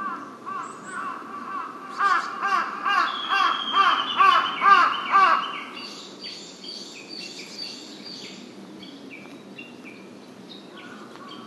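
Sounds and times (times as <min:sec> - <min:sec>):
large-billed crow cawing: 0:00.0 - 0:05.7
thin whistled bird calls: 0:03.0 - 0:11.4.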